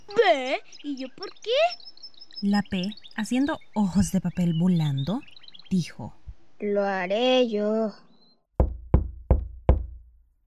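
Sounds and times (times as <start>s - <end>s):
speech: 0.1s - 8.1s
knocking on a wooden door: 8.6s - 10.2s.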